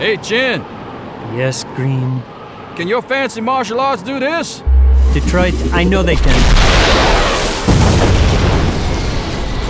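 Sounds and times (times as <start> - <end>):
speech: 0.0 - 7.4
explosion from a ray blast destroying a tank: 4.7 - 9.6.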